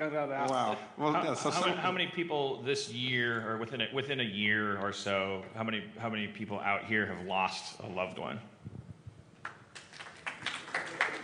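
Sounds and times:
speech: 0.0s - 8.5s
small crowd applauding: 9.4s - 11.2s.

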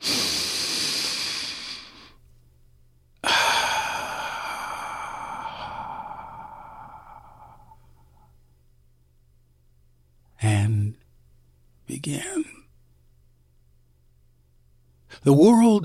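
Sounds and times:
deep breath: 0.0s - 2.2s, 3.2s - 8.4s
speech: 12.0s - 12.4s, 15.2s - 15.8s.

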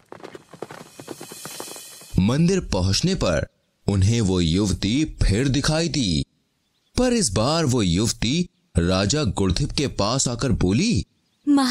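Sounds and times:
hooves of two ridden horses clip-clopping: 0.0s - 2.2s
speech: 2.2s - 6.3s, 7.0s - 11.6s.

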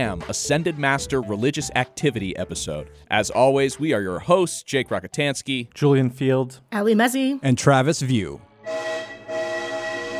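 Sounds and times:
speech: 0.0s - 9.0s
train whistle: 8.6s - 10.1s.

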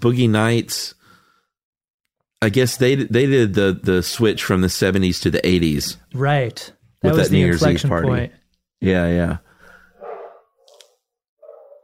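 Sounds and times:
speech: 0.0s - 1.0s, 2.4s - 9.4s
dogs barking: 10.0s - 10.6s, 11.4s - 11.8s.

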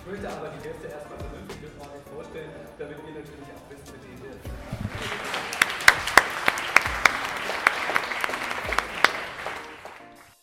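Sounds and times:
speech: 0.1s - 5.3s
audience applause at a podcast conference: 4.7s - 10.4s.

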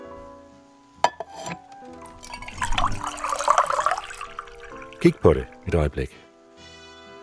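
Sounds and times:
glass clinking: 2.0s - 5.8s
water pouring into a glass: 2.0s - 6.0s
speech: 5.0s - 6.2s.

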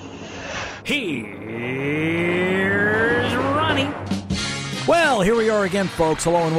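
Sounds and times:
car engine droning: 0.0s - 4.4s
speech: 0.8s - 1.9s, 5.2s - 6.5s
hybrid race car passing by: 1.2s - 4.3s.

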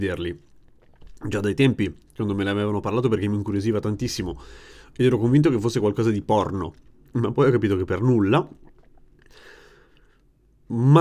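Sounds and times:
speech: 0.0s - 0.5s, 1.2s - 8.6s, 10.7s - 10.9s
person chewing close to the microphone: 0.4s - 2.3s, 6.4s - 10.5s.

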